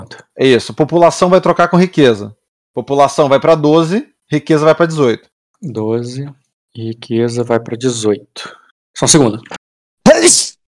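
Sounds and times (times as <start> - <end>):
speech: 0.4 - 9.6, 10.2 - 10.5
sneeze: 10.1 - 10.6.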